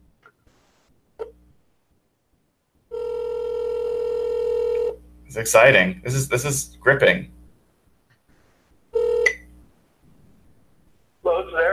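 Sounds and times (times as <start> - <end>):
phone ringback tone on an outgoing call: 2.9 - 5.0, 9.0 - 9.4
speech: 5.3 - 7.4.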